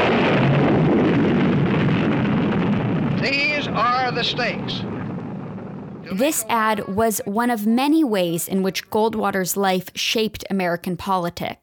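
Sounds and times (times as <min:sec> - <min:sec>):
nuclear explosion rumbling roar in a political television ad: 0:00.0 - 0:07.0
speech: 0:04.2 - 0:04.9, 0:06.1 - 0:11.6.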